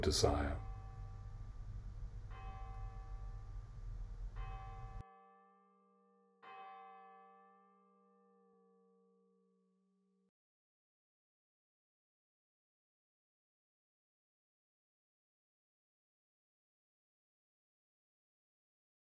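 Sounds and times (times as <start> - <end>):
speech: 0.0 - 0.6
resonant bell struck and ringing: 0.0 - 5.0
steady hum: 0.0 - 5.0.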